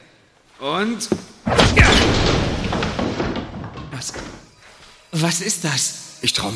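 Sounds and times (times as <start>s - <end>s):
speech: 0.6s - 1.9s, 5.2s - 6.5s
chair clattering as it bounces off a window: 1.2s - 4.8s.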